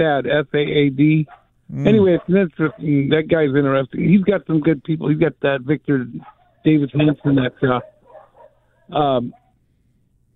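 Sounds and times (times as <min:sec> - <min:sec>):
speech: 0:00.0 - 0:07.9, 0:08.9 - 0:09.4
dog barking at someone walking past the house: 0:01.3 - 0:02.9, 0:06.2 - 0:09.6
faint talk: 0:01.7 - 0:02.4.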